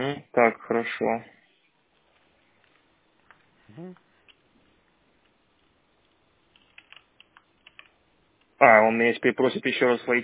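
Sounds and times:
low noise: 0:00.0 - 0:10.2
speech: 0:00.1 - 0:01.4, 0:03.7 - 0:04.0, 0:08.6 - 0:10.2
brief vocal sound: 0:03.7 - 0:04.0
keyboard typing of a password: 0:05.2 - 0:08.5.

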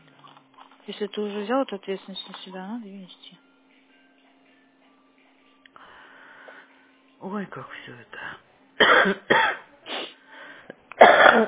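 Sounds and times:
speech: 0:00.9 - 0:03.4, 0:07.2 - 0:09.6, 0:11.1 - 0:11.4
wheezy breaths and throat sounds: 0:05.8 - 0:07.0, 0:09.9 - 0:10.8
person coughing: 0:08.8 - 0:10.2, 0:11.0 - 0:11.4.

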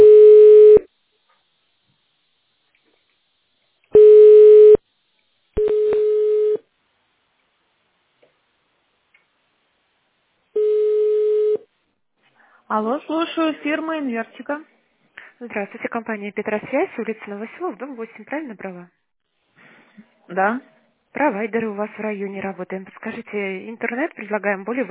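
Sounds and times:
telephone line beeps while a call is transferred: 0:00.0 - 0:00.8, 0:04.0 - 0:04.8, 0:05.6 - 0:06.6, 0:10.6 - 0:11.6
speech: 0:12.8 - 0:14.8, 0:15.4 - 0:19.0, 0:20.0 - 0:24.8.

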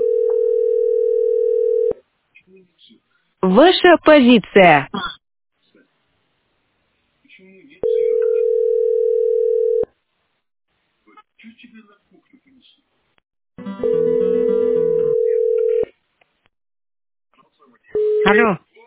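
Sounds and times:
telephone ringing with a repeated incoming call: 0:00.0 - 0:02.0, 0:07.8 - 0:09.9, 0:13.8 - 0:15.9
speech: 0:03.4 - 0:04.9, 0:18.2 - 0:18.7.

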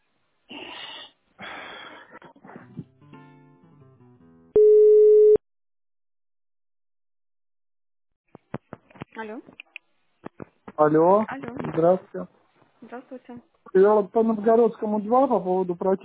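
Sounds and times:
breathy rustling: 0:00.5 - 0:02.9
telephone line tone while a call is being transferred: 0:04.6 - 0:05.4
speech: 0:09.2 - 0:09.6, 0:10.8 - 0:16.0.

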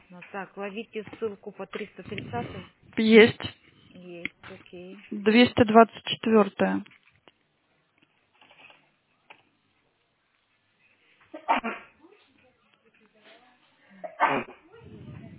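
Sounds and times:
speech: 0:00.1 - 0:07.0
person sneezing: 0:14.2 - 0:14.6
low murmuring: 0:14.5 - 0:15.3.

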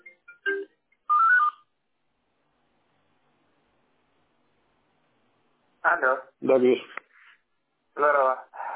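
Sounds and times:
phone ringtone short electronic melody for an incoming call: 0:00.0 - 0:01.7
speech: 0:05.9 - 0:07.0.

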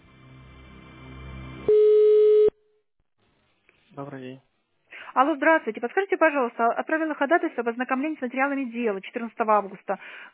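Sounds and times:
low steady telephone line hum while a call is being connected: 0:01.7 - 0:02.6
speech: 0:04.0 - 0:04.5, 0:05.2 - 0:10.3.

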